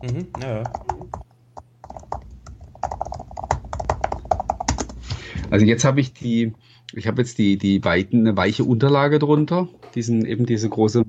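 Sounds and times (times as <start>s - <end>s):
speech: 0.0s - 1.0s, 5.5s - 11.0s
rapid typing on a thin detachable tablet keyboard cover: 0.0s - 1.2s, 1.8s - 5.1s.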